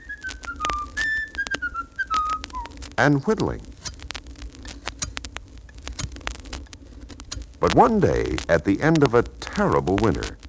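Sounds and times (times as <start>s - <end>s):
person whistling a short tune: 0.0s - 2.7s
speech: 3.0s - 3.7s, 7.6s - 10.4s.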